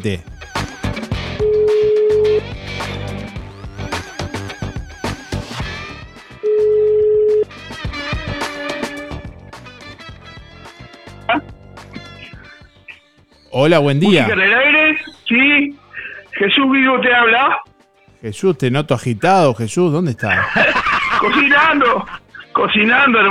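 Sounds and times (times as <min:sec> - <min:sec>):
speech: 0:00.0 - 0:00.3, 0:13.6 - 0:15.8, 0:16.4 - 0:17.6, 0:18.2 - 0:23.2
busy music: 0:00.0 - 0:23.2
ringback tones from an outgoing phone call: 0:01.4 - 0:02.4, 0:06.4 - 0:07.5
laughter: 0:20.2 - 0:22.5.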